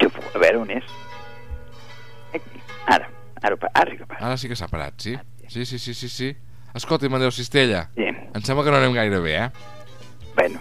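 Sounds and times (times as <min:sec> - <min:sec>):
bells ringing: 0:00.0 - 0:03.4
speech: 0:00.4 - 0:01.2, 0:02.3 - 0:09.8, 0:10.4 - 0:10.6.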